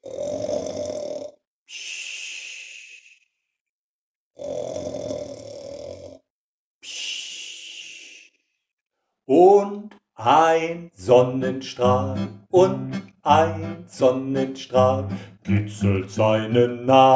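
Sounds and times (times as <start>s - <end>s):
loud snoring of a father sleeping in bed: 0.0s - 1.4s, 4.4s - 6.2s
speech: 9.3s - 17.1s.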